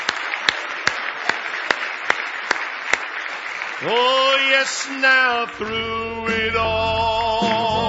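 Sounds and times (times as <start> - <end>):
audience clapping in unison on a steady beat: 0.0 - 5.6
speech: 3.8 - 7.7.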